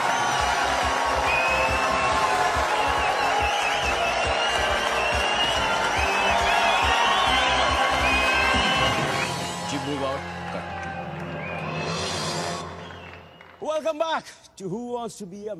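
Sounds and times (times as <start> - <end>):
pounding beat: 0.0 - 9.7
upbeat TV quiz show music: 0.0 - 13.4
studio audience applause and cheering at a TV quiz show: 0.0 - 13.9
speech: 14.2 - 15.5.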